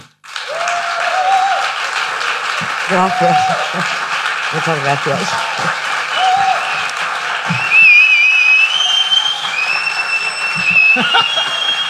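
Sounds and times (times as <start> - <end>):
audience applause welcoming a guest: 0.0 - 11.8
laughter: 2.3 - 8.1, 8.7 - 11.8
speech: 2.9 - 5.8
faint whistle-like tone: 7.6 - 11.8.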